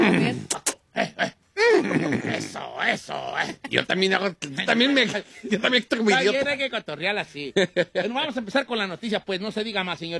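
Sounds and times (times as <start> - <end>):
person vocally imitating a trained show horse: 0.0 - 3.6
speech: 2.4 - 10.1.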